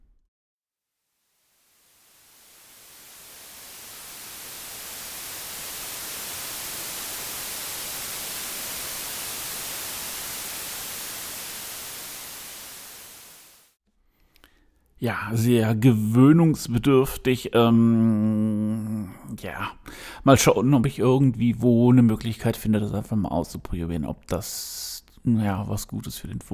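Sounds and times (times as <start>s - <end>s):
steady broadband white noise hiss: 1.4s - 13.8s
speech: 15.0s - 26.5s.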